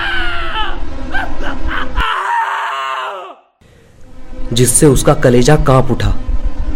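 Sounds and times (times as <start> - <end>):
man screaming in pain: 0.0 - 3.5
speech: 4.6 - 6.3.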